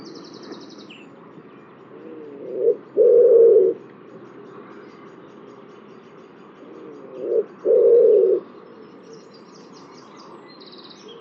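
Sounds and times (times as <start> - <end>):
bird cooing: 1.9 - 3.8, 6.6 - 9.5.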